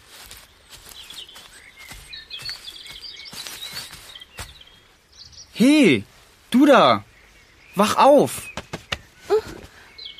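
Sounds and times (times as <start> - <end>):
several birds chirping and twittering at dawn: 0.0 - 10.1
speech: 5.6 - 7.1, 7.8 - 8.5.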